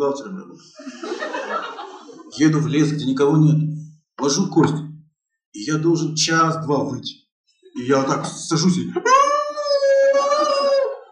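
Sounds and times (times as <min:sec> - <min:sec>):
speech: 0:00.0 - 0:04.9, 0:05.5 - 0:07.2, 0:07.8 - 0:09.3
laughter: 0:00.6 - 0:03.0, 0:07.8 - 0:11.0
person's voice imitating a howl: 0:09.1 - 0:11.0.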